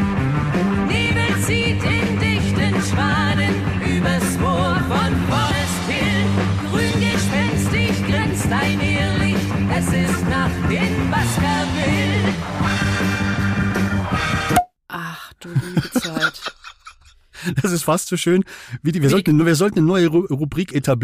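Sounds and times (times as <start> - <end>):
heavy rock band playing a cover song: 0.0 - 14.5
speech: 1.5 - 2.0, 17.5 - 21.0
laughter: 15.4 - 17.9.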